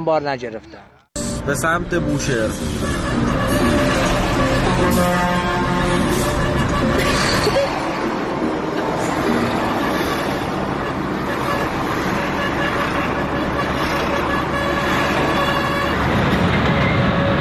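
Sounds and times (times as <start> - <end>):
speech: 0.0 - 3.8, 4.8 - 6.2
truck engine rumble at a freight terminal in Qazvin: 0.6 - 17.3
truck horn blasts at a freight terminal in Qazvin: 1.2 - 17.3.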